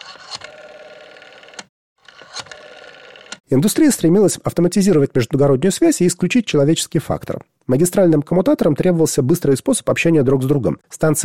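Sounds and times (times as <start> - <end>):
rotary telephone dial whirring and ticking as it spins back: 0.0 - 3.4
speech: 3.5 - 11.2.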